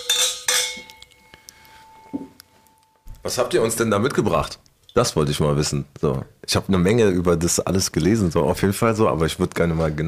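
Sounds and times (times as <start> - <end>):
glasses clinking during a toast: 0.0 - 2.4
speech: 3.2 - 10.0.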